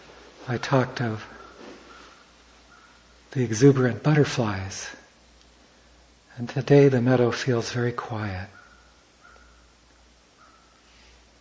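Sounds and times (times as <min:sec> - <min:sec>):
steady outdoor hiss: 0:00.0 - 0:11.3
speech: 0:00.5 - 0:01.4, 0:03.3 - 0:05.0, 0:06.4 - 0:08.6
crows cawing in a meadow: 0:01.3 - 0:03.1, 0:08.5 - 0:09.8, 0:10.4 - 0:10.8.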